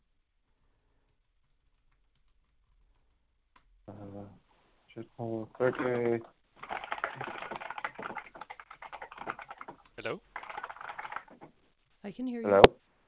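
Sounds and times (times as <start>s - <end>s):
typing on a computer keyboard: 0.5s - 3.9s, 5.4s - 11.5s
speech: 4.0s - 4.4s, 5.0s - 7.4s, 10.0s - 10.3s, 12.0s - 12.8s.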